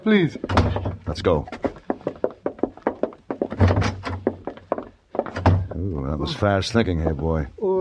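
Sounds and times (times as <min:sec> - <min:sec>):
speech: 0:00.0 - 0:01.6, 0:05.8 - 0:07.7
sharp regular knocks or footsteps: 0:00.0 - 0:07.5
door shutting with a heavy booming thud: 0:00.5 - 0:01.1, 0:03.6 - 0:04.2, 0:05.3 - 0:05.8.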